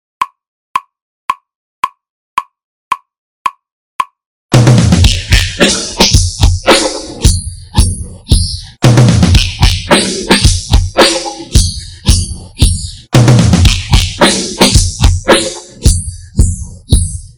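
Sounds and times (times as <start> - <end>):
drums: 4.5 - 17.3.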